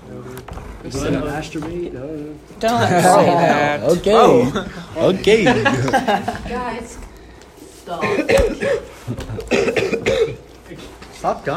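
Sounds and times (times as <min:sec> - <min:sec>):
speech: 0:00.8 - 0:07.0, 0:07.9 - 0:09.8, 0:11.2 - 0:11.5
laughter: 0:02.7 - 0:06.8
person coughing up blood: 0:08.0 - 0:10.5.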